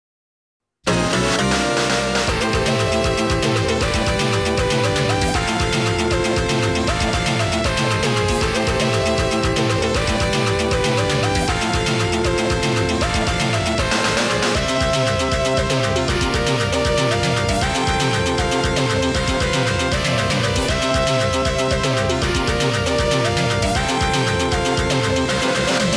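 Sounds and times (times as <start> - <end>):
ranking background music: 0.9 - 25.9.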